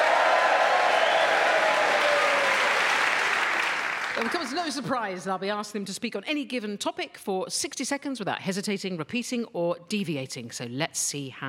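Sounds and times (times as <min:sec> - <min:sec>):
live audience cheering and whooping: 0:00.0 - 0:04.3
live audience applauding: 0:00.0 - 0:05.0
speech: 0:04.2 - 0:11.4.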